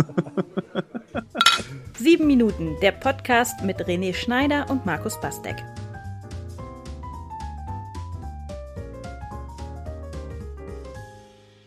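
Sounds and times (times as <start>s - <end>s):
speech: 0.0s - 0.5s, 2.0s - 5.8s
quick rhythmic laughter: 0.0s - 1.4s
glasses clinking in a toast: 1.4s - 1.8s.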